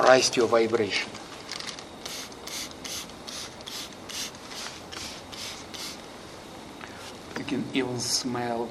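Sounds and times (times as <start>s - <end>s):
speech: 0.1s - 1.2s, 7.5s - 8.6s
spray bottle spritzing overhead: 2.0s - 6.0s.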